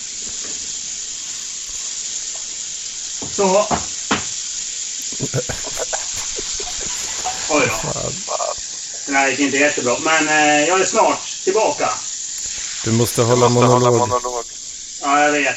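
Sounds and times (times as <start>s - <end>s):
speech: 3.2s - 4.0s, 5.2s - 5.9s, 9.1s - 12.0s, 12.8s - 14.5s, 15.1s - 15.5s
laughter: 5.2s - 8.7s, 12.9s - 14.4s
stream of water pouring into a container: 5.5s - 8.1s.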